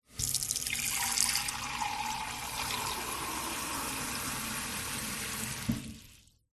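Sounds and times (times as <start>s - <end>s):
water filling a mug from a household kitchen tap: 0.1s - 6.4s.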